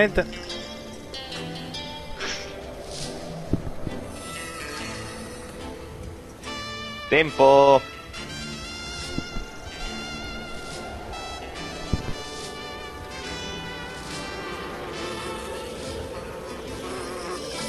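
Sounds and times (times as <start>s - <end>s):
speech: 0.0s - 0.5s, 7.1s - 7.9s
flies buzzing in a western scene: 0.0s - 17.6s.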